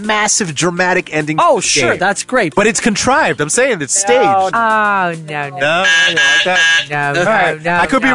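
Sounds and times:
speech: 0:00.0 - 0:08.1
voice imitating a buzzer: 0:05.6 - 0:06.9.

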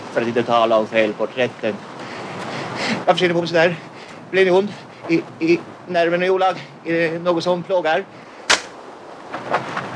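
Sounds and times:
speech: 0:00.2 - 0:01.9, 0:03.1 - 0:08.3
fainter dull smacks: 0:08.5 - 0:08.8
sharp slap across a man's face: 0:08.5 - 0:08.8.

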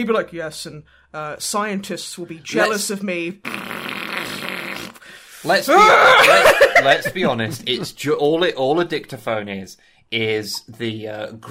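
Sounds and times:
speech: 0:00.0 - 0:03.9, 0:05.4 - 0:11.4
person blowing a raspberry imitating a fart: 0:03.4 - 0:05.1
laughter: 0:05.8 - 0:08.0.

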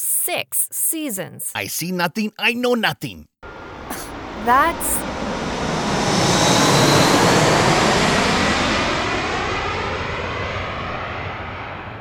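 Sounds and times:
speech: 0:00.2 - 0:03.3, 0:04.4 - 0:05.4
low-flying airplane roaring overhead with whining jet tone: 0:03.4 - 0:11.9.

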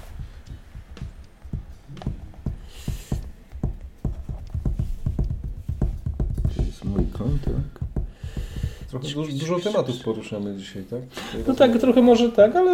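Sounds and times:
horse hooves clip-clopping: 0:00.0 - 0:09.2
speech: 0:07.2 - 0:07.8, 0:08.9 - 0:12.7.

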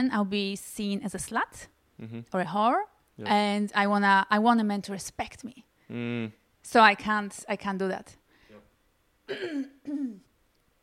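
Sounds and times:
speech: 0:00.0 - 0:08.2, 0:09.3 - 0:10.3
woman clearing her throat: 0:09.3 - 0:10.3.

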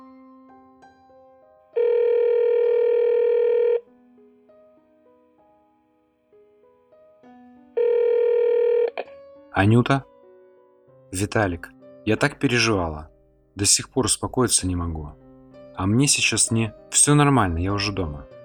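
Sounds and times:
long steady electronic phone line tones: 0:01.8 - 0:03.8, 0:07.8 - 0:09.1
speech: 0:09.6 - 0:10.1, 0:11.1 - 0:15.2, 0:15.8 - 0:18.4.

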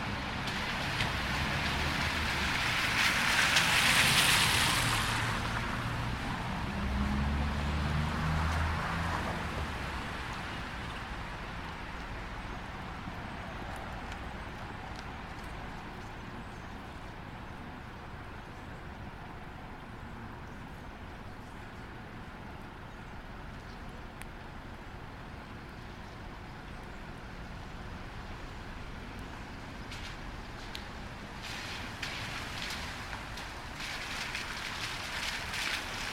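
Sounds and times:
car tires hissing through water on a wet street: 0:00.0 - 0:11.3, 0:29.9 - 0:36.1
steady quiet street noise: 0:00.0 - 0:36.1.

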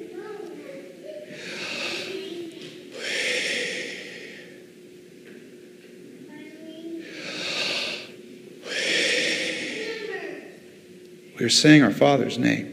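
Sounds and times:
faint low hum: 0:00.0 - 0:12.7
person breathing in and out: 0:01.3 - 0:04.6, 0:07.0 - 0:10.2
speech: 0:11.4 - 0:12.7.

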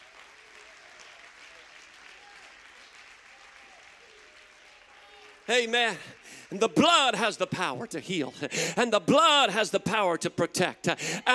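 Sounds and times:
audience applause: 0:00.0 - 0:08.7
speech: 0:05.5 - 0:11.3.

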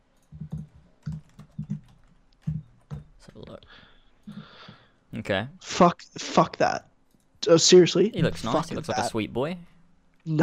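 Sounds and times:
typing on a computer keyboard: 0:00.1 - 0:03.1
speech: 0:05.2 - 0:10.4.

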